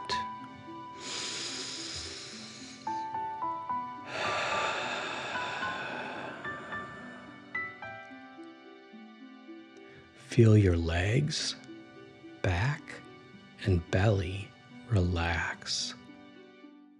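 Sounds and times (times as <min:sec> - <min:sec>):
soft gentle music: 0:00.0 - 0:16.9
forceful exhaled breaths from a deep-breathing exercise: 0:00.9 - 0:03.1, 0:04.0 - 0:07.7
speech: 0:10.4 - 0:11.6, 0:13.7 - 0:15.9.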